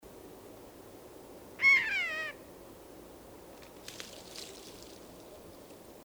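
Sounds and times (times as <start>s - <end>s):
Eurasian jay Garrulus glandarius giving a drawn-out descending mewing call: 1.6s - 2.4s.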